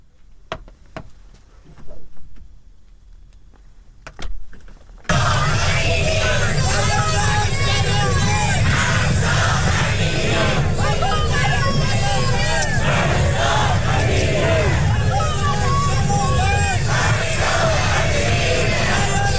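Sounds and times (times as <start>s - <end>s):
large protest crowd chanting and shouting: 5.1s - 19.3s.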